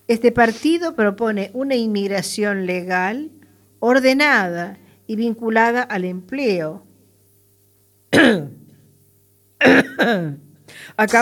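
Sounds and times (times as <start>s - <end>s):
speech: 0.1s - 6.9s, 8.2s - 8.6s, 9.6s - 10.4s, 11.0s - 11.2s
person coughing harshly: 8.2s - 8.6s, 9.6s - 10.4s.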